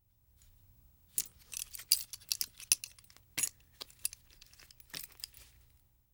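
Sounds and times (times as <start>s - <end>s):
metal clip moving: 1.2s - 5.7s.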